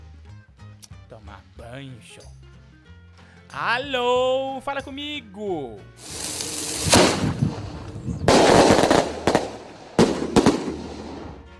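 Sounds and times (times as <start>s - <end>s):
speech: 1.1s - 2.4s, 3.5s - 6.2s
firecrackers exploding in the street: 6.0s - 11.5s.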